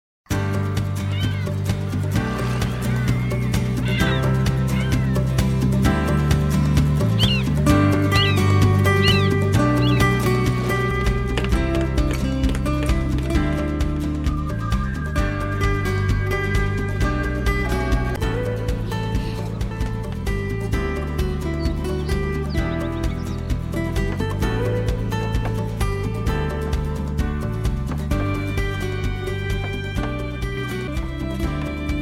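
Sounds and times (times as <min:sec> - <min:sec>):
very happy guitar theme: 0:00.3 - 0:32.0.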